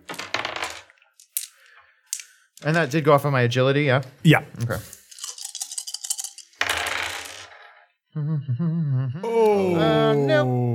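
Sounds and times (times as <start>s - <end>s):
two red dice rolling on a table during a tabletop game attack: 0.0s - 2.7s, 5.2s - 7.8s
speech: 2.6s - 5.0s, 8.2s - 10.7s.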